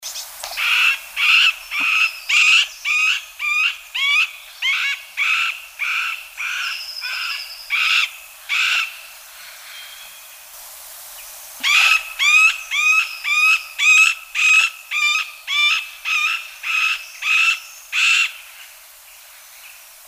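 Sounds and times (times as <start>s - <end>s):
middle spotted woodpecker calling: 0.5s - 9.0s, 11.6s - 18.4s.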